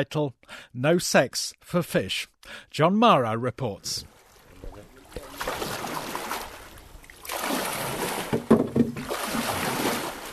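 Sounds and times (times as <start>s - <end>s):
speech: 0.0s - 4.1s
paddles of fishing boats splashing on Lake Victoria: 3.8s - 10.3s.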